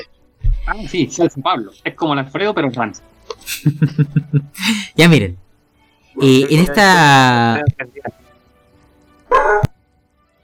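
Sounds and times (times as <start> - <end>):
speech: 0.7 - 5.4, 6.2 - 8.2
laughter: 3.5 - 4.9
dog barking: 9.3 - 9.7.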